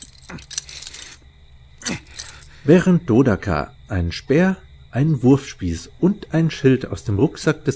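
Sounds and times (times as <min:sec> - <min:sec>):
keys jangling while searching for the gate key: 0:00.0 - 0:01.2, 0:01.9 - 0:02.6
speech: 0:02.6 - 0:07.7.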